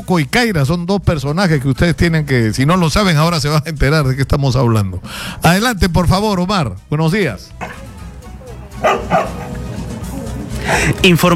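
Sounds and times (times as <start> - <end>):
speech: 0.0 - 7.9, 8.8 - 9.4, 10.7 - 11.3
steady low murmur: 7.5 - 11.3
6-year-old dog barking: 7.6 - 8.0, 8.8 - 9.7.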